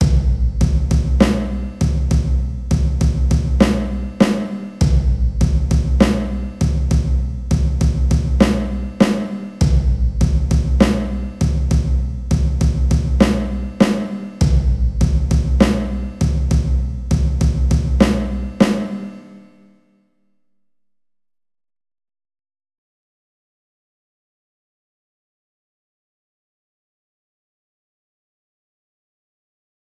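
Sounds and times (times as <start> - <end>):
drum sequence: 0.0 - 19.4.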